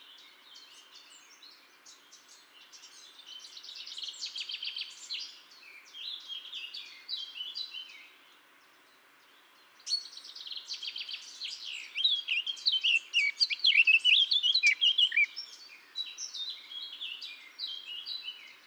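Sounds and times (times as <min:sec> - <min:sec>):
Eurasian blackcap warbling song: 0:12.0 - 0:15.3.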